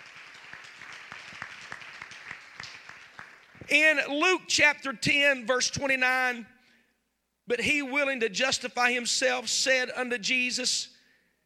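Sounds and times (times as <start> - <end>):
crowd clapping in steady applause: 0.0 - 3.8
speech: 3.7 - 6.5, 7.5 - 10.9.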